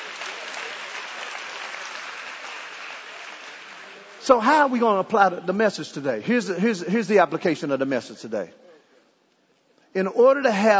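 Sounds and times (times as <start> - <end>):
crowd applauding: 0.0 - 4.4
speech: 4.3 - 8.6, 10.0 - 10.7.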